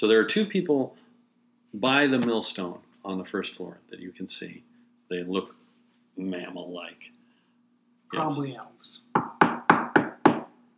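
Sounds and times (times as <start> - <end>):
speech: 0.0 - 1.0, 1.7 - 5.6, 6.2 - 7.2, 8.1 - 9.2
firm knocking on a wooden door: 9.2 - 10.5.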